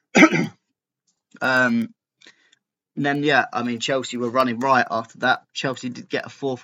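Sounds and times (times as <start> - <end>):
single sharp cough: 0.1 - 0.6
voiced rumbling throat clearing: 0.1 - 0.6
speech: 1.4 - 2.4, 3.0 - 6.6.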